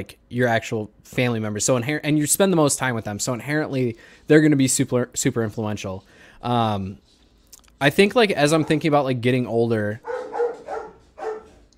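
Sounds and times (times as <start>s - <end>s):
speech: 0.0s - 7.1s, 7.8s - 10.4s
dogs barking: 8.5s - 9.0s, 10.0s - 11.7s.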